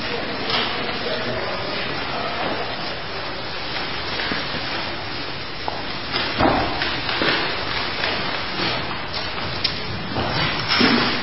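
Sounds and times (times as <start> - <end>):
steady hiss of room noise: 0.0 - 11.2
chairs being moved and arranged in a circle: 5.6 - 11.2.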